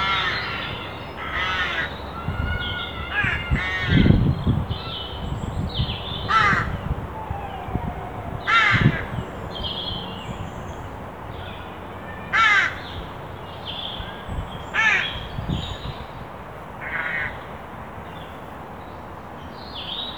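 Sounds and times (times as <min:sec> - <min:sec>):
carrion crow Corvus corone cawing: 0:00.0 - 0:04.2, 0:06.3 - 0:06.8, 0:08.5 - 0:09.2, 0:12.3 - 0:12.8, 0:16.8 - 0:17.4
low rumbling background noise: 0:00.0 - 0:19.8.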